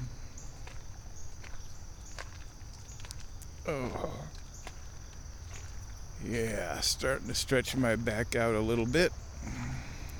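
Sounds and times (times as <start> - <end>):
slow footsteps walking out of a large bird blind: 0.0 - 6.3
steady high insect drone: 0.0 - 10.1
speech: 3.7 - 4.4, 6.2 - 9.6.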